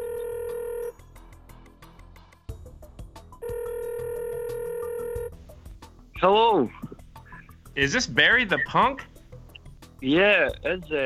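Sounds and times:
telephone ring tone: 0:00.0 - 0:01.0, 0:03.4 - 0:05.4
speech: 0:06.2 - 0:06.8, 0:07.8 - 0:09.1, 0:10.0 - 0:11.0.

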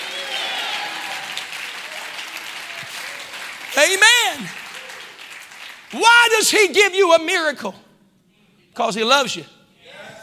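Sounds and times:
audience clapping: 0:00.0 - 0:06.6
speech: 0:03.8 - 0:04.6, 0:05.9 - 0:07.8, 0:08.8 - 0:09.6.

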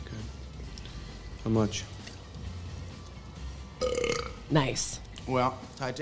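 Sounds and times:
speech: 0:01.4 - 0:02.0, 0:03.8 - 0:06.0
loud low rumbling burp: 0:03.8 - 0:04.4.

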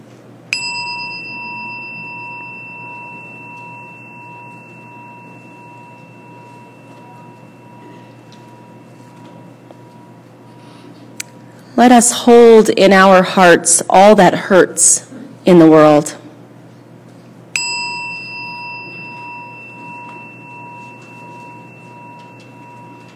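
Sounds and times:
quiet hum: 0:00.0 - 0:23.1
chime struck and ringing: 0:00.5 - 0:10.6, 0:17.6 - 0:23.1
speech: 0:11.8 - 0:16.2.

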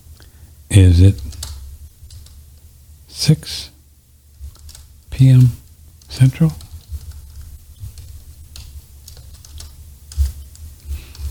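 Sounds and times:
speech: 0:00.8 - 0:01.3, 0:03.2 - 0:03.7, 0:05.2 - 0:06.6
typing on a computer keyboard: 0:01.1 - 0:02.4, 0:04.4 - 0:05.6, 0:06.6 - 0:11.2.

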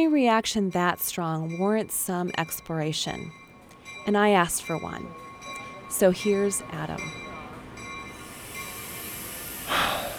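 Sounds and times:
speech: 0:00.0 - 0:03.4, 0:04.0 - 0:05.2, 0:05.9 - 0:07.2
Amtrak passenger train steady mechanical hum: 0:00.0 - 0:10.1
faint tonal whine of passenger train: 0:00.0 - 0:10.1
short loud hiss of released air from passenger train: 0:08.2 - 0:10.1.

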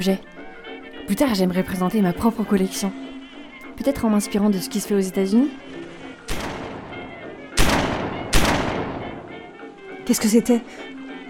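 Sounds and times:
speech: 0:00.0 - 0:00.3, 0:01.1 - 0:03.0, 0:03.8 - 0:05.8, 0:10.1 - 0:11.0
sharp distant bangs with booming echo: 0:06.3 - 0:09.5.

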